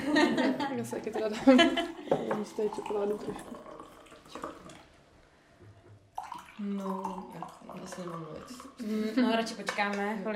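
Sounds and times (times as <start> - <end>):
laughter: 0.0 - 2.2
speech: 0.2 - 3.7, 6.6 - 10.3
drink being poured into a glass: 1.1 - 5.2, 5.9 - 9.0.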